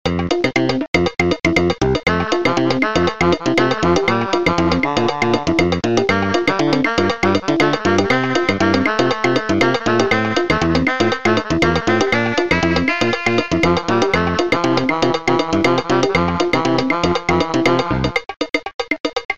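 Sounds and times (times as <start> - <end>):
steel drum playing a rhumba: 1.0 - 19.3.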